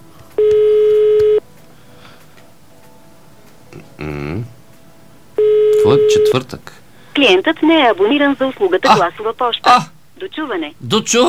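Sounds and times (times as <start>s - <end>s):
telephone dialing and ringing tones of an outgoing call: 0.4s - 1.4s, 5.4s - 6.4s
speech: 6.1s - 11.2s.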